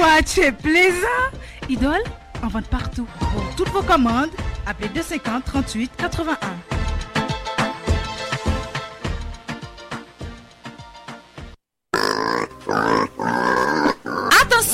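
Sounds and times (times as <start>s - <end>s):
music: 0.0s - 11.6s, 12.2s - 14.7s
speech: 0.2s - 6.7s
pig grunting and oinking: 11.9s - 14.7s.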